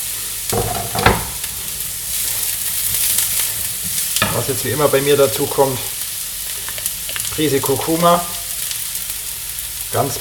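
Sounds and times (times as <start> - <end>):
onions sizzling in a pan of browned carrots: 0.0 - 10.1
speech: 4.4 - 6.0, 7.4 - 8.4, 9.9 - 10.1.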